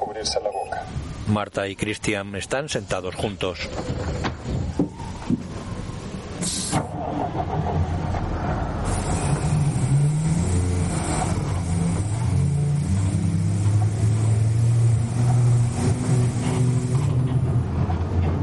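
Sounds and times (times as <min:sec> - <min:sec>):
bus engine starting and idling: 0:00.0 - 0:18.3
speech: 0:00.2 - 0:04.3
faint hiss of air: 0:06.4 - 0:06.9, 0:08.8 - 0:17.4.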